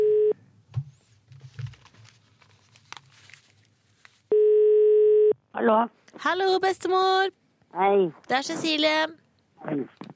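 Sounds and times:
telephone ringback tone: 0.0 - 0.4, 4.3 - 5.3
rustling and handling noises: 0.8 - 4.3
speech: 5.6 - 10.1.

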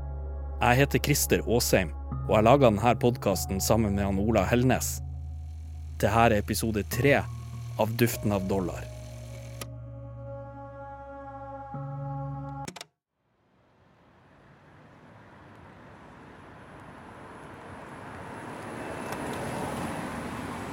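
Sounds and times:
speech: 0.6 - 5.1, 6.0 - 8.9
electric driverless bus rolling through streets: 4.1 - 9.7, 14.2 - 20.7.

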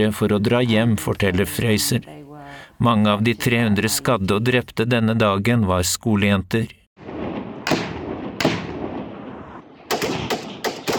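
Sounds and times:
speech: 0.0 - 7.1
gunfire from soldiers on patrol shooting toward a slope: 7.0 - 10.9.

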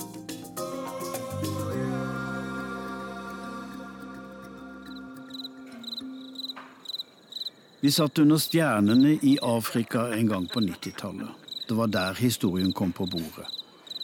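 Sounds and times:
musical passage: 0.0 - 6.7
crickets chirping on a mild night in Africa: 1.3 - 14.0
speech: 7.8 - 13.6.

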